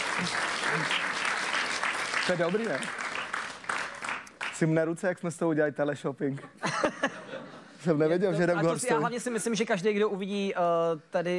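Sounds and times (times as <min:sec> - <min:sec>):
crowd clapping: 0:00.0 - 0:04.8
speech: 0:00.2 - 0:01.2, 0:02.3 - 0:03.0, 0:04.6 - 0:11.3.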